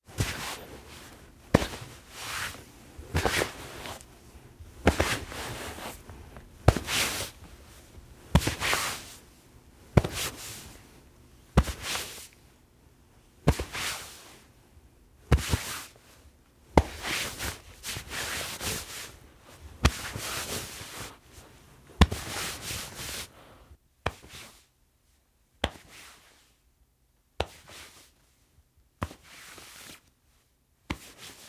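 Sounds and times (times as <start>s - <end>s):
cotton clothes grabbed and rustling: 0.0s - 23.6s.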